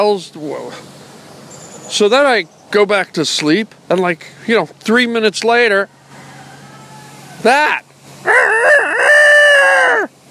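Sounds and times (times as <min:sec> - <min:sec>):
speech: 0:00.0 - 0:01.0, 0:01.9 - 0:06.0, 0:07.4 - 0:08.5
rooster crowing: 0:05.8 - 0:07.6, 0:08.2 - 0:10.2.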